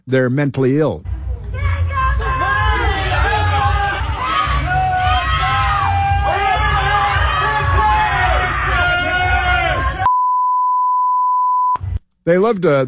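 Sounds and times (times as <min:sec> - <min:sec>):
speech: 0:00.0 - 0:01.6, 0:12.2 - 0:12.8
protest crowd chanting and yelling: 0:01.1 - 0:10.1
steady electronic beep tone: 0:10.1 - 0:11.8.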